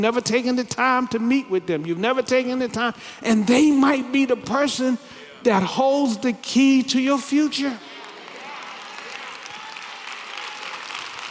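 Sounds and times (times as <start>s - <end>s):
speech: 0.0s - 8.0s
audience clapping: 7.8s - 11.2s.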